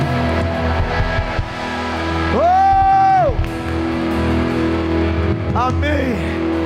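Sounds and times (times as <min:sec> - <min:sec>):
large audience shouting and cheering: 0:00.0 - 0:06.6
person whooping: 0:02.3 - 0:03.5.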